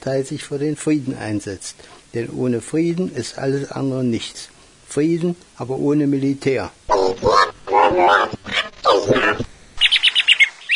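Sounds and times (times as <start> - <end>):
speech: 0.0 - 8.4, 9.0 - 9.5
female parrot giving harsh drawn-out squawks: 6.9 - 10.7.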